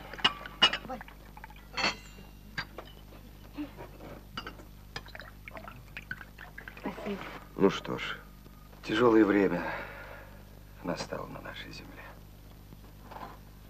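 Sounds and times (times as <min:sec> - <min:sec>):
vodka trickling into glasses: 0:00.0 - 0:02.7, 0:04.9 - 0:07.6
glasses clinking: 0:00.2 - 0:03.1
speech: 0:07.1 - 0:08.2, 0:08.8 - 0:09.9, 0:10.8 - 0:12.1.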